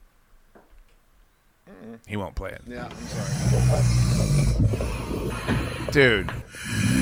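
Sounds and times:
speech: 1.7 - 6.9
man with a broken nose snoring loudly: 2.8 - 7.0.

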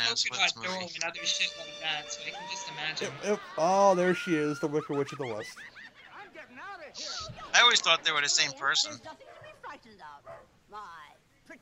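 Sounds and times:
speech: 0.1 - 5.8, 6.4 - 11.6
laughter: 2.3 - 8.2
dog barking: 9.2 - 10.5.

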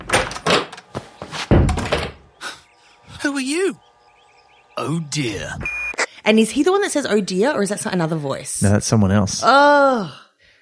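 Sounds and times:
door latch and frame clunking and rattling as a door is opened: 0.0 - 0.8
speech: 3.4 - 3.8, 4.8 - 10.6.

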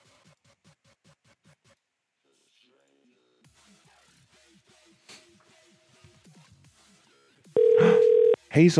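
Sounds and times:
soft scattered electronic tones: 7.6 - 8.4
speech: 8.6 - 8.7.

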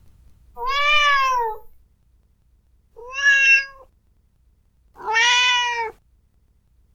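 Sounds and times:
cat meowing: 0.6 - 1.7, 3.0 - 3.9, 5.0 - 6.0.

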